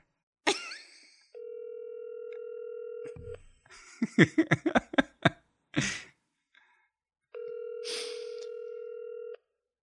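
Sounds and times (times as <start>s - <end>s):
telephone ringback tone from an outgoing phone call: 1.4s - 3.2s, 7.4s - 9.4s
laughter: 3.7s - 6.1s.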